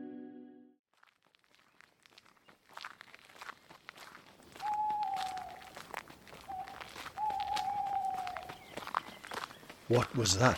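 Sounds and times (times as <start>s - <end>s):
footsteps crunching through undergrowth: 0.9s - 10.5s
owl hooting: 4.6s - 5.8s, 6.4s - 9.0s
speech: 9.9s - 10.5s.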